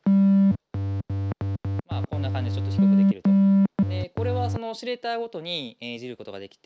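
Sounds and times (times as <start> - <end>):
analog synthesizer triangle wave notes shifted up an octave: 0.0 - 4.7
speech: 2.2 - 3.2, 4.7 - 6.6.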